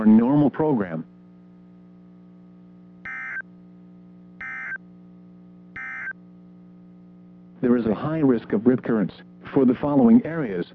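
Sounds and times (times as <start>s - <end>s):
speech: 0.0s - 1.1s, 7.6s - 10.7s
low hum: 0.0s - 10.7s
NOAA Weather Radio warning alarm tones sounded as a test: 3.0s - 3.4s, 4.4s - 4.8s, 5.8s - 6.2s.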